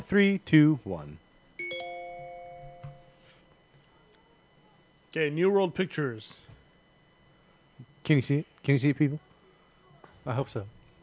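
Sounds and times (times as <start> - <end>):
speech: 0.1 - 1.2, 5.2 - 6.5, 8.0 - 9.3, 10.3 - 10.8
bright electronic chime: 1.6 - 3.4.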